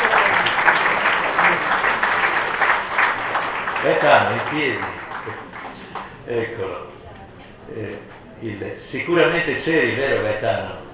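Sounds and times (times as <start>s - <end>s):
audience applause: 0.0s - 6.2s
speech: 4.0s - 5.5s, 6.3s - 7.0s, 7.7s - 10.8s.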